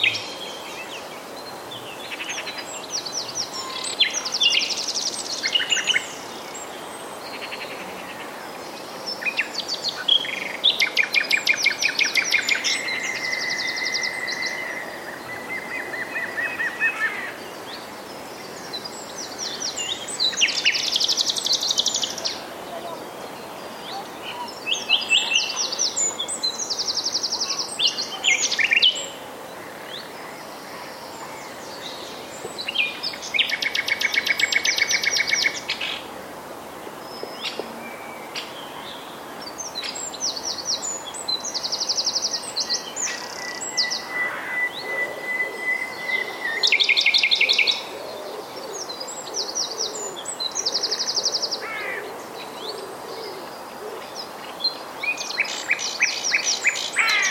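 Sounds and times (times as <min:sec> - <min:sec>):
nightingale: 0:00.0 - 0:36.1, 0:37.0 - 0:57.2.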